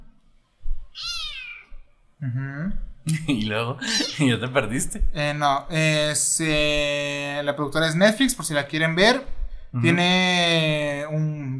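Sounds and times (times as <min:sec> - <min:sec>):
cat meowing: 0:00.9 - 0:01.8
speech: 0:02.2 - 0:11.5
laughter: 0:03.1 - 0:04.7.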